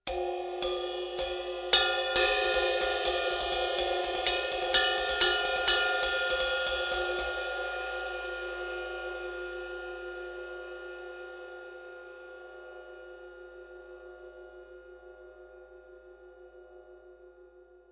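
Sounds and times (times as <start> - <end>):
Sabian B8 Pro Rock ride cymbal: 0.0 - 9.5.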